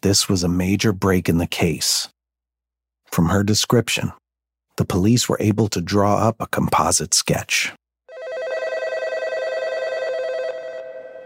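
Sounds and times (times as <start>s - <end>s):
speech: 0.0s - 2.2s, 3.1s - 4.2s, 4.8s - 7.8s
telephone bell ringing with a rapid trilling rattle: 8.1s - 11.2s.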